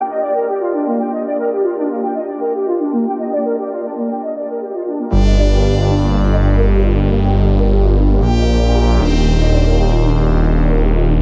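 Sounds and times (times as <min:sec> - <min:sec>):
synthwave music: 0:00.0 - 0:11.2.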